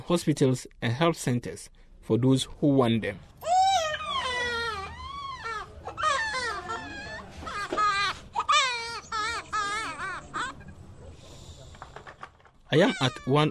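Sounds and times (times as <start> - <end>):
speech: 0.1 - 3.5, 12.7 - 13.5
infant crying after oral vaccine: 3.4 - 10.8, 12.7 - 13.5.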